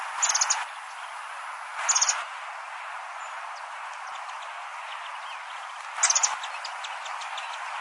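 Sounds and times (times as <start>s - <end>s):
southern beardless tyrannulet calling: 0.2s - 1.2s, 1.8s - 2.3s, 3.2s - 7.7s.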